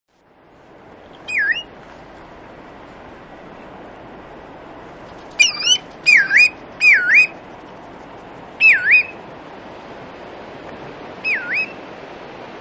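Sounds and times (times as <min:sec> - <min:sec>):
soft steady background hiss: 0:00.1 - 0:12.5
Bristle-thighed curlew Numenius tahitiensis calls: 0:01.2 - 0:01.7, 0:05.4 - 0:07.4, 0:08.6 - 0:09.2, 0:11.2 - 0:11.8.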